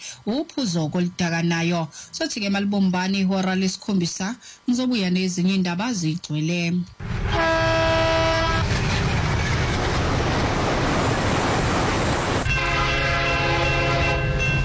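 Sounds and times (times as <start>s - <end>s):
speech: 0.2s - 7.6s
long sustained train horn blasts: 7.0s - 9.6s, 12.4s - 14.6s
commuter metro train rumbling and rattling: 7.0s - 14.6s.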